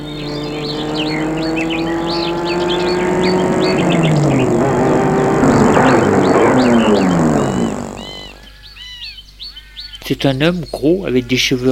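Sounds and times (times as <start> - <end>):
car engine passing by: 0.0 - 8.5
birds chirping: 0.0 - 11.7
speech: 10.1 - 11.7.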